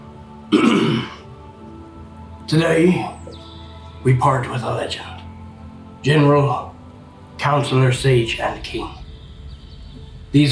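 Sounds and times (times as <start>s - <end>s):
throat clearing: 0.5s - 1.2s
speech: 2.5s - 3.2s, 4.0s - 5.2s, 6.0s - 6.7s, 7.4s - 9.0s, 10.3s - 10.5s.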